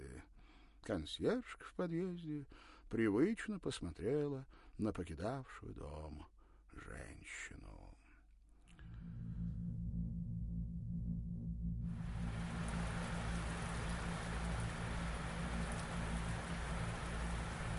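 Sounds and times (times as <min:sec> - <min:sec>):
speech: 0:00.8 - 0:08.0
low continuous hum: 0:08.7 - 0:17.7
heavy rain falling on a city at night: 0:11.9 - 0:17.7.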